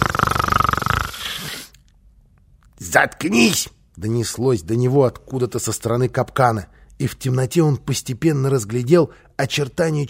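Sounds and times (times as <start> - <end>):
person imitating snoring: 0.0 - 1.8
speech: 2.9 - 10.0.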